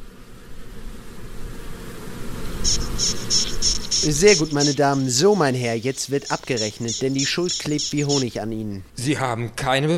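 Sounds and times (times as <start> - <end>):
swarm of bees buzzing: 0.0 - 8.6
speech: 2.6 - 9.9
brief high-pitched chirps: 2.7 - 8.6.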